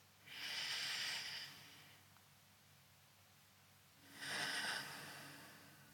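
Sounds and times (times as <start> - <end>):
deep breaths in and out during a guided grounding exercise: 0.2 - 2.1, 4.0 - 5.9.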